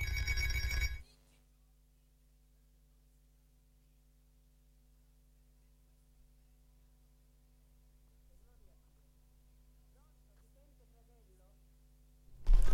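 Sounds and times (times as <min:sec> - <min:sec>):
loud telephone ringing: 0:00.0 - 0:01.0
telephone line hum: 0:00.0 - 0:01.0.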